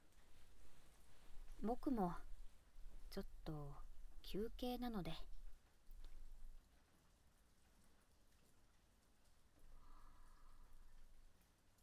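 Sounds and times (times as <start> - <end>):
steady rain patter: 0.0 - 11.8
faint tonal hum: 0.4 - 6.6
speech: 1.6 - 2.3, 3.1 - 5.3.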